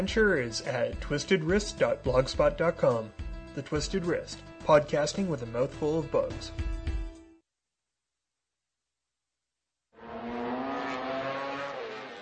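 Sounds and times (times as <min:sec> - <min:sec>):
speech: 0:00.0 - 0:06.7
road racing motorcycle engines revving: 0:10.0 - 0:12.1.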